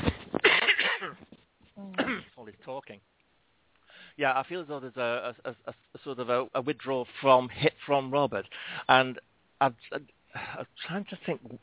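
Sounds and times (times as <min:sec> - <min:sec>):
person coughing: 0:00.0 - 0:01.2, 0:01.8 - 0:02.3
speech: 0:02.7 - 0:03.2, 0:04.2 - 0:11.6.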